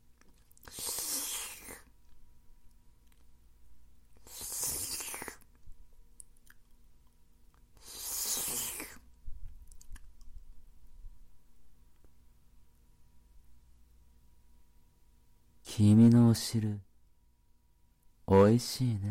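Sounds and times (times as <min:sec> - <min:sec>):
mouth clicks and smacks: 0:00.0 - 0:03.3, 0:04.2 - 0:10.5
wet mouth licking sounds in an intimate roleplay: 0:00.2 - 0:02.2, 0:04.2 - 0:05.6, 0:07.6 - 0:10.4
speech: 0:15.8 - 0:16.9, 0:18.3 - 0:19.0.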